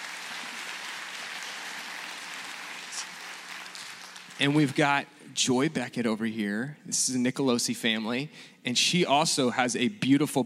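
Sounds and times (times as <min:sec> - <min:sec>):
crowd applause of many hands clapping: 0:00.0 - 0:04.9
speech: 0:04.4 - 0:10.4.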